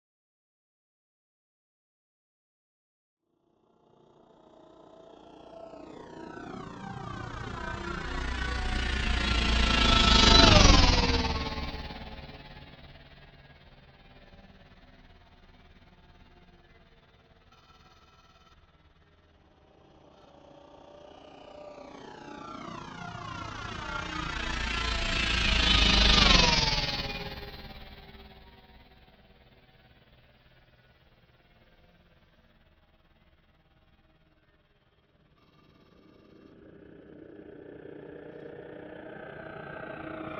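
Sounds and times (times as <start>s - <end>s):
heavy spaceship passing by: 4.4s - 14.9s, 21.4s - 31.0s, 35.5s - 40.3s.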